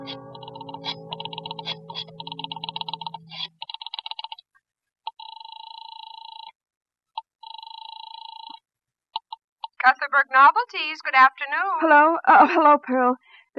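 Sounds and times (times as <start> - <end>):
low hum: 0.0 - 4.0
telephone ringing: 0.0 - 4.4, 5.1 - 6.5, 7.2 - 8.6
rotary phone dial whirring and clicking: 1.9 - 4.4, 5.1 - 6.6, 7.2 - 8.6
speech: 10.1 - 13.5.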